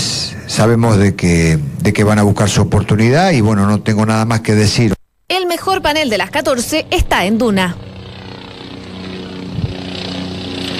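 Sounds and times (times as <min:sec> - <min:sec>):
speech: 0:00.6 - 0:07.8
helicopter passing overhead: 0:05.6 - 0:10.7.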